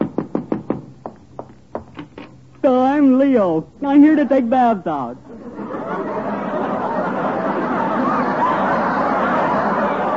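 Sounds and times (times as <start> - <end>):
knocking on a door: 0.0 - 2.0
speech: 2.6 - 5.2
laughter: 5.2 - 10.1.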